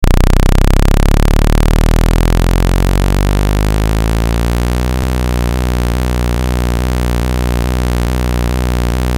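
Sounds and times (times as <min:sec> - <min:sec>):
recharge sound: 0:00.0 - 0:09.0.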